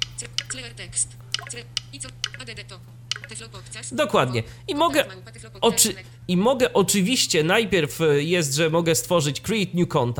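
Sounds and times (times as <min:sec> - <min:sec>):
hardware computer keyboard key presses including the Enter key: 0:00.0 - 0:00.6, 0:01.3 - 0:02.5, 0:03.1 - 0:03.4
low electrical hum: 0:00.0 - 0:10.1
speech: 0:00.2 - 0:10.1.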